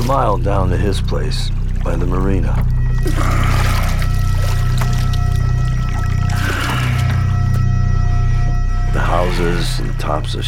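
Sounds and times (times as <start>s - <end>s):
steady low droning hum: 0.0s - 10.4s
speech: 0.1s - 4.0s, 8.9s - 10.4s
oars rowing a boat through flood water: 1.5s - 7.6s.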